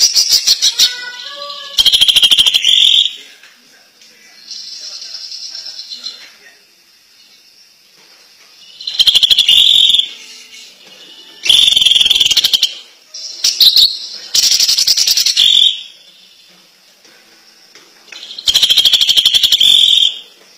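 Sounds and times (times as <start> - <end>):
greater green leafbird singing fast harsh trills and chattering notes: 0.0 - 3.2, 8.6 - 16.5, 18.2 - 20.4.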